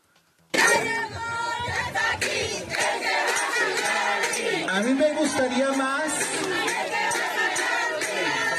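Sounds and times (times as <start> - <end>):
crowd of women chanting a cheer in unison: 0.6 - 8.5
speech: 4.7 - 7.0.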